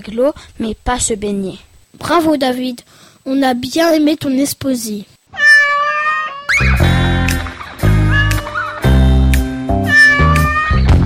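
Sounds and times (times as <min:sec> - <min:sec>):
speech: 0:00.0 - 0:05.1
cat meowing: 0:05.4 - 0:07.0, 0:07.8 - 0:09.0, 0:09.8 - 0:10.9.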